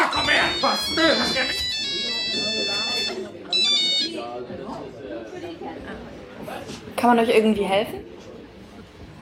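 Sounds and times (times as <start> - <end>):
shrill simple monophonic mobile phone ringtone: 0.1 - 4.3
speech: 7.0 - 8.1.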